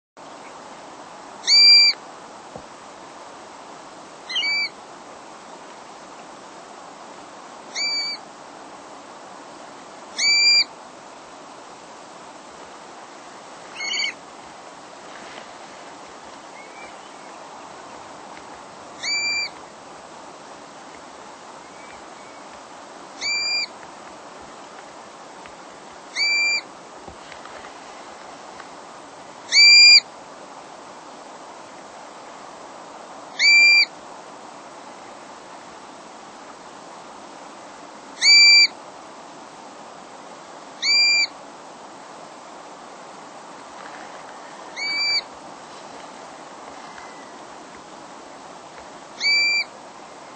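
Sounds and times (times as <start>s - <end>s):
Black-bellied Plover calling: 1.4s - 2.0s, 4.3s - 4.7s, 7.7s - 8.2s, 10.2s - 10.7s, 13.7s - 14.2s, 19.0s - 19.6s, 23.2s - 23.7s, 26.1s - 26.6s, 29.5s - 30.0s, 33.4s - 33.9s, 38.2s - 38.7s, 40.8s - 41.3s, 44.5s - 45.3s, 49.2s - 49.7s.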